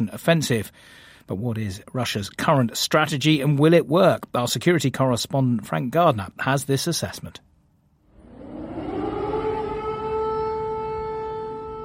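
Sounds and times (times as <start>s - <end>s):
speech: 0.0s - 7.5s
air raid siren wailing outdoors: 8.1s - 11.8s.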